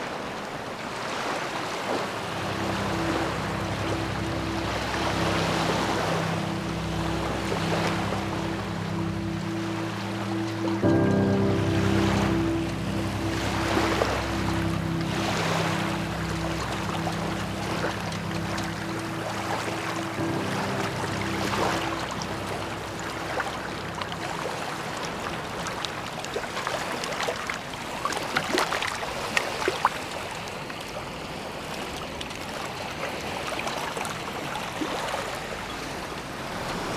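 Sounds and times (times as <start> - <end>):
waves of a rising tide washing in: 0.0 - 36.9
wind gusts: 0.0 - 36.9
low engine-like drone: 2.1 - 26.4.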